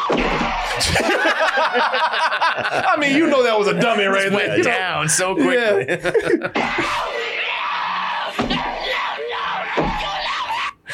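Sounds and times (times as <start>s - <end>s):
laughter: 0.7s - 7.4s
speech: 0.9s - 7.3s
Tasmanian devil screeching: 6.6s - 10.9s.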